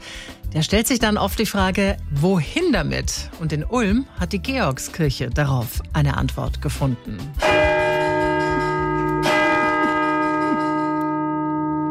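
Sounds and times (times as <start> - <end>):
speech: 0.5 - 7.8
church bells ringing at a church: 7.4 - 11.9.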